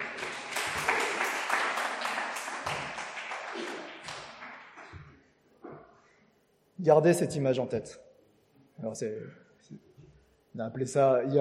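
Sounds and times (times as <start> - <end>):
audience applauding: 0.0 - 4.9
speech: 6.8 - 8.1, 8.8 - 9.9, 10.6 - 11.3.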